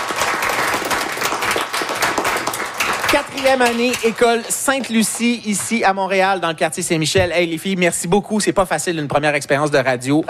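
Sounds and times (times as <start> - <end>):
group applauding: 0.0 - 6.0
speech: 3.1 - 10.2.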